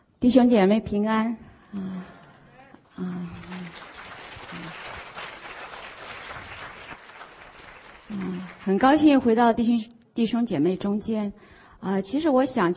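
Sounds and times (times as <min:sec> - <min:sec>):
speech: 0:00.2 - 0:02.2, 0:03.0 - 0:03.5, 0:08.1 - 0:12.7
audience applause at a church service: 0:03.1 - 0:08.8.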